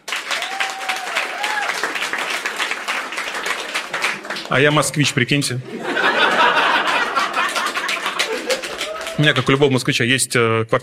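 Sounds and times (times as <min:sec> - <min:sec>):
cheers: 0:00.0 - 0:04.4, 0:06.8 - 0:09.7
audience applause: 0:00.0 - 0:09.9
speech: 0:04.5 - 0:05.9, 0:09.2 - 0:10.8
laughter: 0:05.4 - 0:09.7.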